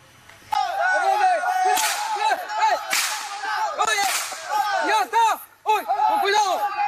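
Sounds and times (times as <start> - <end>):
crowd shouting agitatedly at night: 0.5 - 6.8
gunshots fired at night in an indigenous community in the Peruvian jungle: 1.7 - 4.6.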